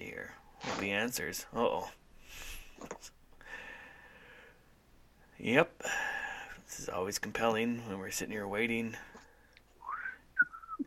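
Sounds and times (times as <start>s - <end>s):
speech: 0.7s - 3.2s, 5.4s - 6.0s, 6.7s - 9.2s
person whistling a brief melodic phrase: 9.8s - 10.8s.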